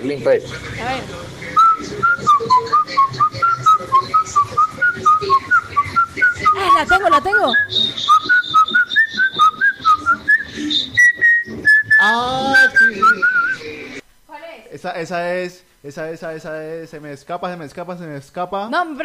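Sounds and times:
speech: 0.0 - 2.6, 6.6 - 8.3, 12.0 - 12.8, 14.8 - 19.0
female listener whistling a song melody: 1.6 - 13.6.

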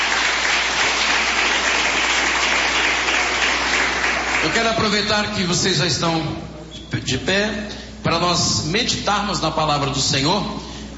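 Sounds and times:
church audience applauding: 0.0 - 4.9
speech: 4.4 - 10.6.

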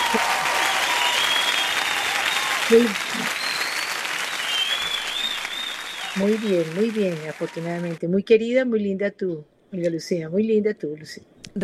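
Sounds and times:
crowd applause: 0.0 - 8.0
speech: 2.7 - 3.3, 6.2 - 11.6.

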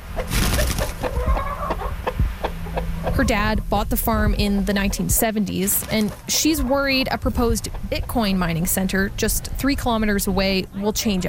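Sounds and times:
chickens clucking on a farm: 0.0 - 11.2
rustling: 0.2 - 1.3, 5.6 - 6.4
speech: 3.2 - 11.2.

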